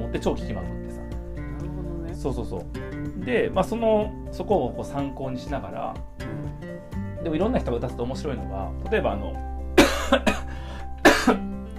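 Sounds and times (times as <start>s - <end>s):
speech: 0.1s - 0.8s, 2.2s - 9.5s, 10.1s - 10.4s
person coughing: 9.8s - 11.5s.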